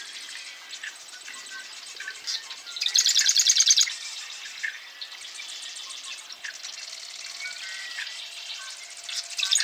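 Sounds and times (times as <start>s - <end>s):
male Eastern Marsh Wren singing at a lake in Nebraska: 0.0s - 9.6s
other birds chirping at a lake in Nebraska: 0.0s - 9.6s.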